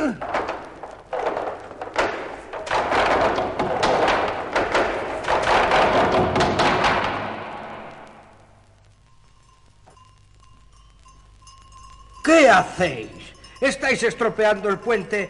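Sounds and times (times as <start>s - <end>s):
heavy wooden logs thrown down thudding: 0.0s - 8.3s
speech: 12.4s - 15.2s.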